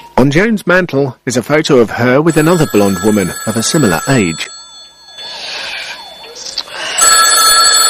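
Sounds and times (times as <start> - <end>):
speech: 0.2 - 4.5
telephone bell ringing in a steady trill: 2.3 - 7.8.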